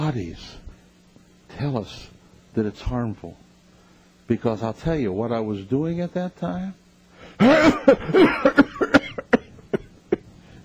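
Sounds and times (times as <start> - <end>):
speech: 0.1 - 0.6, 1.5 - 3.4, 4.3 - 8.7
harsh raspy smoker's cough fit: 7.3 - 10.3.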